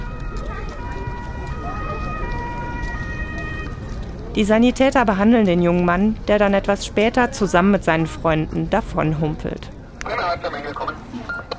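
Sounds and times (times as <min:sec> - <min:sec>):
rescue ambulance siren: 0:00.0 - 0:04.4
dense rumbling outdoor noise: 0:00.0 - 0:11.5
speech: 0:04.4 - 0:09.8.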